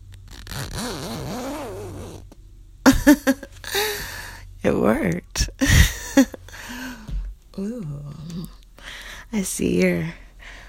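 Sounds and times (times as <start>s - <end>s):
wavering strained hum or groan: 0.0s - 9.3s
zipper yanked open: 0.2s - 2.4s
speech: 3.1s - 3.5s, 4.6s - 5.4s, 9.4s - 10.2s.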